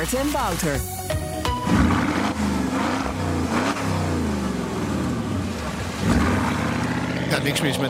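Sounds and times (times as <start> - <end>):
speech: 0.0 - 1.1, 7.3 - 7.8
Porsche Cayenne Turbo engine revving: 1.5 - 7.8.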